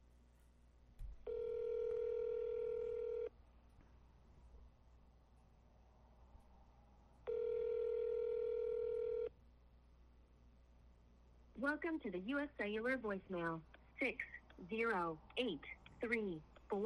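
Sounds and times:
telephone tones while calling a number back: 1.3s - 3.3s, 7.3s - 9.3s
speech: 11.7s - 16.8s.

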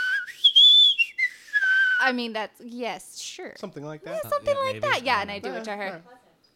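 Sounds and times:
person attempting a short signal whistle: 0.0s - 2.1s
speech: 2.0s - 6.5s.

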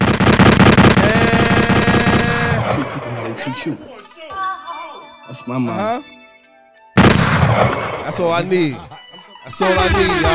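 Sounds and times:
rapid gunshot sound effect bursts: 0.0s - 2.9s, 7.0s - 8.1s
speech: 3.4s - 4.0s, 5.3s - 6.2s, 7.6s - 10.3s.

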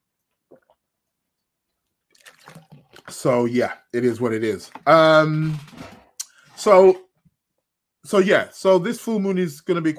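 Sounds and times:
water pouring or slurping: 0.3s - 0.9s, 2.0s - 5.2s
speech: 3.2s - 5.8s, 6.6s - 7.0s, 8.1s - 9.9s.

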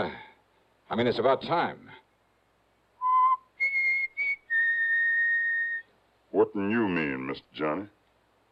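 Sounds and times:
speech: 0.9s - 2.0s, 6.3s - 8.0s
person whistling clear notes: 3.0s - 5.9s.

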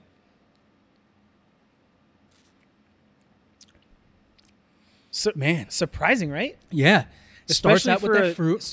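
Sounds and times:
low steady hiss: 0.0s - 8.7s
person sipping whiskey: 2.3s - 2.7s
wet mouth smacks and slurps tasting whiskey: 3.6s - 4.6s
speech: 5.2s - 8.7s.

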